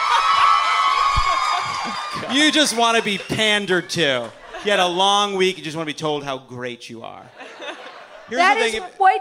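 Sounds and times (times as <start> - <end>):
large audience cheering and whooping: 0.0 - 5.1
laughter: 0.0 - 5.5, 7.2 - 9.0
speech: 2.2 - 7.6, 8.3 - 9.1.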